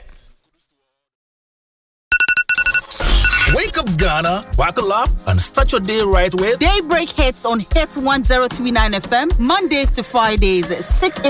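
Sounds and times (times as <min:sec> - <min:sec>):
phone ringtone of electronic tone pulses: 0:02.1 - 0:03.6
speech: 0:03.7 - 0:11.2.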